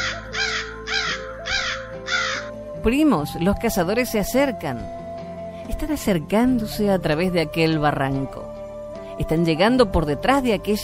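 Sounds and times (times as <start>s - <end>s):
crows cawing: 0.0s - 2.6s
speech: 2.8s - 5.0s, 5.7s - 8.6s, 9.2s - 10.8s.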